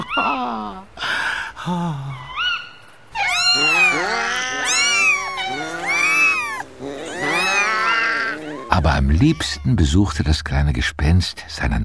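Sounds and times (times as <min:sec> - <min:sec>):
several cats meowing and caterwauling: 0:00.0 - 0:00.8, 0:02.1 - 0:10.2
speech: 0:00.2 - 0:00.9, 0:01.6 - 0:02.1, 0:09.0 - 0:11.8.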